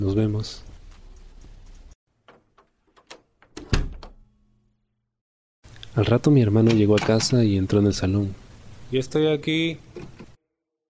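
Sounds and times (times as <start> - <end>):
speech: 0.0 - 0.7, 6.0 - 10.2
door latch clicks and rattles: 2.2 - 4.2
door opening with a solid thunk: 3.4 - 4.2.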